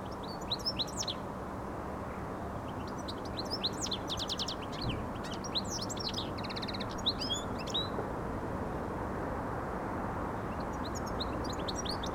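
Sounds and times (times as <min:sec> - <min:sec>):
European goldfinch Carduelis carduelis singing: 0:00.0 - 0:01.2, 0:02.7 - 0:08.0, 0:10.5 - 0:12.1
steady low background noise: 0:00.0 - 0:12.1.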